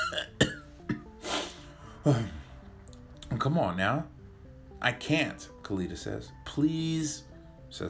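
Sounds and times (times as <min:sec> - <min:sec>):
drunk man coughing harshly: 0:00.0 - 0:01.1
speech: 0:02.0 - 0:02.4, 0:03.4 - 0:04.2, 0:04.8 - 0:07.8.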